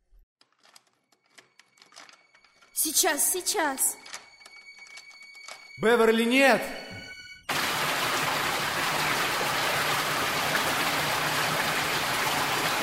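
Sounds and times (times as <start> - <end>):
speech: 2.8 - 4.0, 5.8 - 6.8
strong gush of water flooding a room: 7.5 - 12.8.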